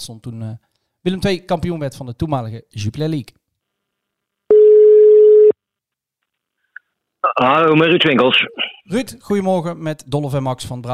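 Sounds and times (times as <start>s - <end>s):
speech: 0.0s - 3.4s, 7.2s - 10.9s
mid-pitched telephone ringing tone while placing a call: 4.5s - 5.6s.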